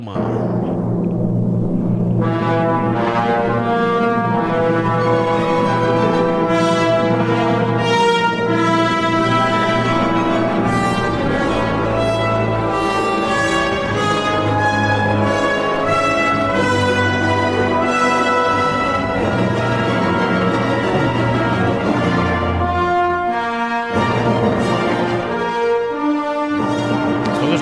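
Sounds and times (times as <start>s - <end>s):
speech: 0.0s - 0.6s
fast movement of a concerto for organ and orchestra: 0.0s - 27.6s.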